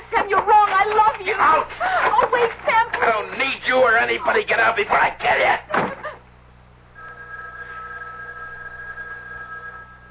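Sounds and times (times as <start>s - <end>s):
low hum: 0.0s - 10.0s
speech: 4.1s - 5.9s
house telephone ringing with a call from the lobby: 7.0s - 10.0s.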